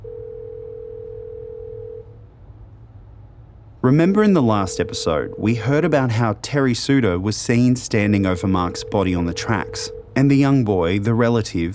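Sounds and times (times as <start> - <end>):
telephone dial tone: 0.0 - 2.0, 4.6 - 5.7, 8.4 - 10.2
faint low hum: 0.0 - 11.7
speech: 3.8 - 11.7.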